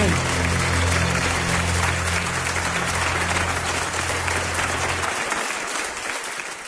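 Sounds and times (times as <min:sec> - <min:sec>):
large crowd applauding: 0:00.0 - 0:06.6.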